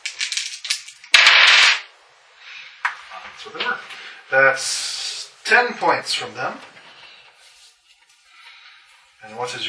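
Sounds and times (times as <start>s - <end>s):
dice rolled during a tabletop role-playing game: 0.0s - 1.9s
speech: 3.2s - 6.7s, 9.3s - 9.6s.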